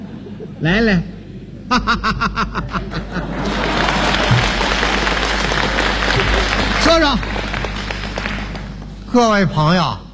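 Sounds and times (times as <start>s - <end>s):
laughter: 0.0s - 8.8s
speech: 0.6s - 3.7s, 6.9s - 7.3s, 9.1s - 10.0s
audience applause at a comedy show: 2.8s - 9.1s.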